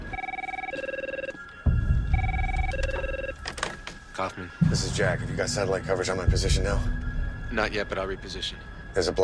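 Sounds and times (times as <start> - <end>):
cell phone ringing with alternating electronic tones: 0.1 - 3.5
speech: 4.2 - 7.0, 7.5 - 9.2.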